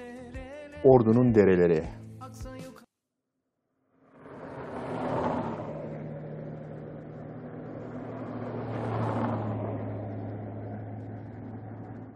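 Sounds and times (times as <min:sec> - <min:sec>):
speech: 0:00.8 - 0:02.0
car driving past beside a creek: 0:03.8 - 0:12.1
low engine hum: 0:04.0 - 0:12.1.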